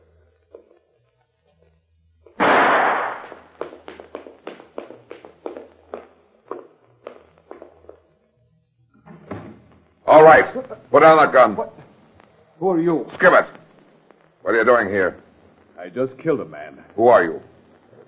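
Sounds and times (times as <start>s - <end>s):
loud thump: 2.4s - 3.4s
speech: 10.1s - 11.8s, 12.6s - 13.6s, 14.4s - 15.2s, 15.8s - 17.5s.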